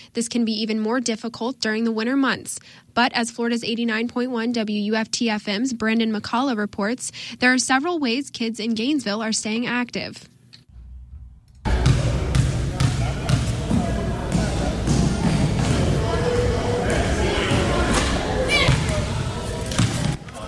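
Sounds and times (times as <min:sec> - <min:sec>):
speech: 0:00.1 - 0:10.3
indistinct voices: 0:11.7 - 0:20.4
several basketballs dribbling in an echoing gym: 0:11.7 - 0:20.4.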